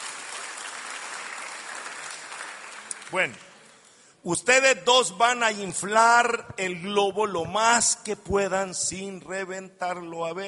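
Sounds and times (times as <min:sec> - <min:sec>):
audience applauding two volunteers at a stage game: 0:00.0 - 0:04.0
speech: 0:03.1 - 0:03.5, 0:04.2 - 0:10.4.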